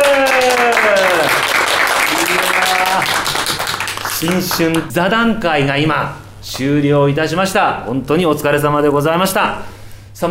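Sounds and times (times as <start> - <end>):
audience applause at a New Year roundtable discussion in Nagaoka, Japan: 0.0 - 4.9
speech: 4.2 - 10.3.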